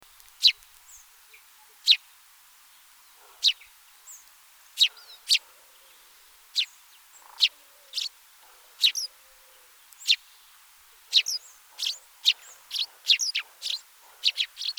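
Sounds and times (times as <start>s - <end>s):
house sparrow Passer domesticus chirps: 0.4s - 1.1s, 3.4s - 5.5s, 6.5s - 9.2s, 9.8s - 10.4s, 11.0s - 14.7s.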